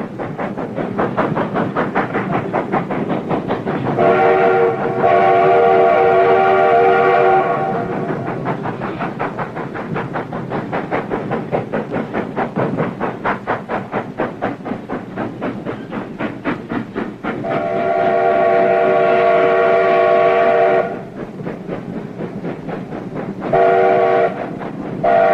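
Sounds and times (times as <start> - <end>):
steam locomotive train passing with rhythmic clatter and chugging: 0.0 - 25.3
steam locomotive whistle blasts: 4.0 - 7.9, 17.4 - 21.1, 23.5 - 24.4, 25.0 - 25.3.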